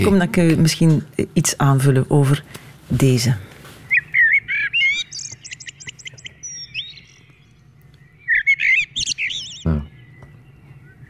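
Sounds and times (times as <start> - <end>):
speech: 0.0 - 3.5
common blackbird singing: 3.9 - 11.0.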